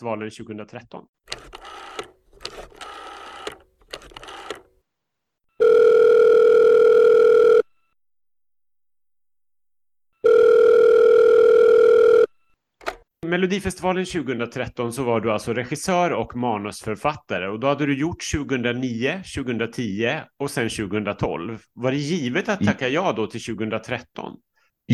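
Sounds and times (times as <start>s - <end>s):
speech: 0.0s - 1.6s, 13.3s - 24.9s
outgoing call's ringback tone with long steady buzzing rings: 5.5s - 8.0s, 10.2s - 12.5s
telephone dialing bleeps: 5.6s - 7.7s, 10.2s - 12.3s.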